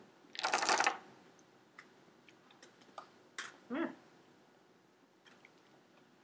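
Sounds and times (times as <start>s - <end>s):
tiny dice shaken in a hand: 0.4s - 1.0s.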